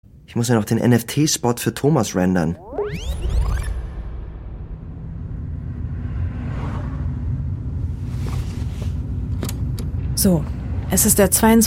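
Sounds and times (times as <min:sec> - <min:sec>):
speech: 0:00.3 - 0:03.3, 0:10.2 - 0:11.6
whooshing of passing air or traffic: 0:04.1 - 0:11.6
car engine rumble and road noise inside a moving car: 0:04.4 - 0:11.6.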